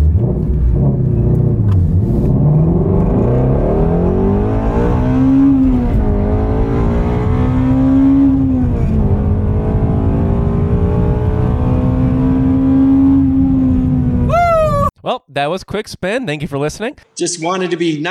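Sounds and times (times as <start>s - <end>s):
2020 Ford Mustang Shelby GT350 V8 engine revving: 0.0s - 14.3s
speech: 15.4s - 18.0s.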